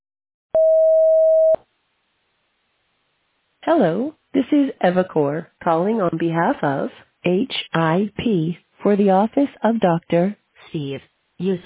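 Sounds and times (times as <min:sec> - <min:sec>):
voicemail recording tone electronic beep: 0:00.6 - 0:01.6
speech: 0:03.7 - 0:11.6.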